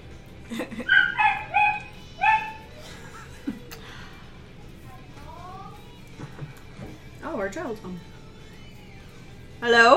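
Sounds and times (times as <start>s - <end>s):
laughter: 0.4s - 1.3s, 2.7s - 3.9s
speech: 0.5s - 1.1s, 7.4s - 8.1s, 9.6s - 9.9s
dog barking: 0.9s - 2.7s.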